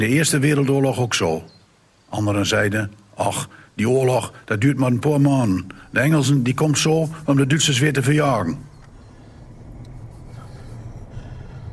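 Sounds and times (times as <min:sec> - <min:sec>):
speech: 0:00.0 - 0:08.7
road rumble: 0:03.8 - 0:11.7
low engine of a car with automatic transmission: 0:08.0 - 0:11.7.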